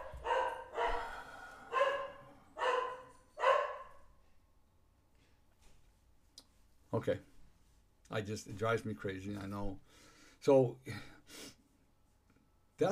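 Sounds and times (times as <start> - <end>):
dogs barking inside a house: 0.0 - 4.0
speech: 7.0 - 7.3, 8.1 - 11.4.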